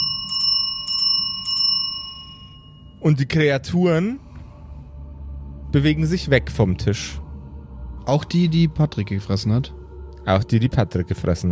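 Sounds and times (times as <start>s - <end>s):
kitchen or reception bell ringing rapidly: 0.0s - 3.0s
speech: 3.0s - 4.2s, 5.7s - 7.2s, 8.0s - 11.5s.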